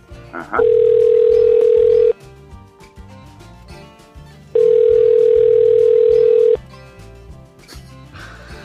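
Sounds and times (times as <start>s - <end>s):
speech: 0.3s - 1.1s
phone ringback tone: 0.6s - 2.1s, 4.6s - 6.6s.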